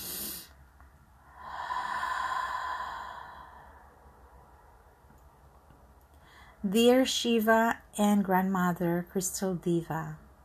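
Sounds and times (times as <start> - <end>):
slow deep breath during a guided meditation: 0.0 - 0.6, 1.2 - 4.4, 6.1 - 6.6
speech: 6.6 - 10.2.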